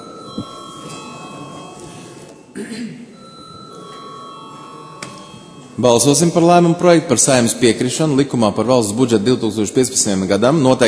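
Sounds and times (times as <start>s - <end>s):
parliament bell ringing before a vote: 0.0s - 2.5s, 3.1s - 6.7s
low murmur of voices in parliament: 0.0s - 10.8s
speech: 5.8s - 10.8s.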